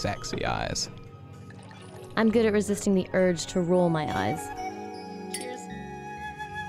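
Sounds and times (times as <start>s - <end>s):
speech: 0.0s - 1.0s, 2.2s - 4.6s
glasses clinking in a toast: 5.2s - 5.7s.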